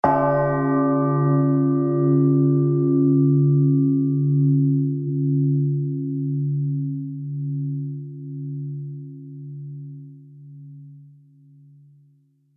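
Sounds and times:
large funeral death bell tolling: 0.0s - 8.6s.

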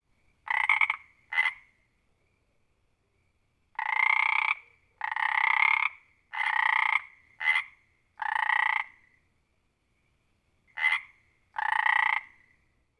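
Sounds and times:
single frog croaking close perspective: 0.4s - 1.8s, 3.7s - 9.2s, 10.7s - 12.6s.

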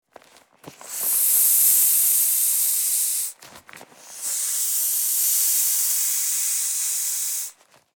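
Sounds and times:
rubber ring deflating with air release: 0.8s - 3.4s, 4.0s - 7.6s.

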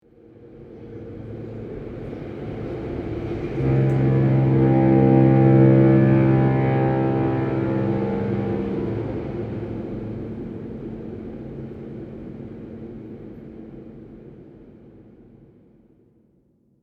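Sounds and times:
distant fog horn of a passing ship: 2.1s - 13.0s.

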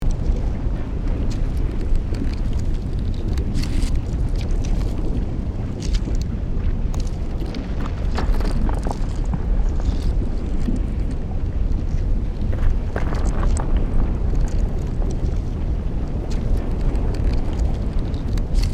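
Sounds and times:
volcanic debris rocks rolling: 0.0s - 18.7s.

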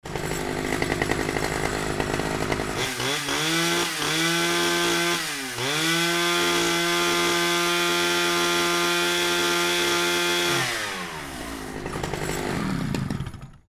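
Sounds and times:
chainsaw revving: 0.0s - 13.6s.

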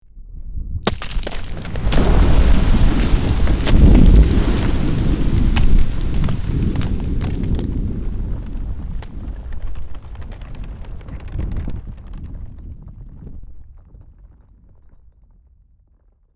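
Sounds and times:
volcanic debris falling: 0.8s - 14.0s
volcano lava eruption explosion: 0.8s - 15.2s.

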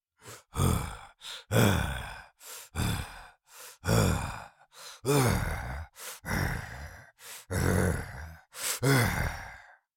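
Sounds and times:
cartoon lion voice breathing: 0.2s - 9.8s.

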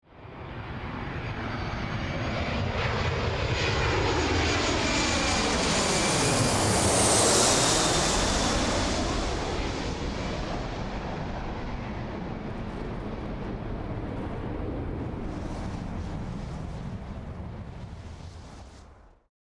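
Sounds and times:
distant airplane landing at an airport: 0.1s - 19.3s.

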